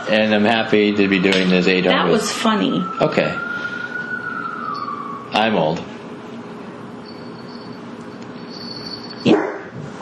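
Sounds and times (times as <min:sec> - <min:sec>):
speech: 0:00.1 - 0:03.5, 0:05.4 - 0:05.9
dog yipping softly: 0:08.5 - 0:09.7
dog barking: 0:09.2 - 0:09.8.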